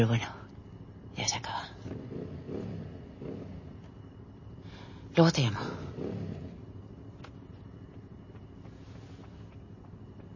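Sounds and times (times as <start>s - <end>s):
speech: 0.0s - 0.4s, 5.2s - 6.2s
motorcycle engine rumbling with a low throaty drone: 1.8s - 10.3s.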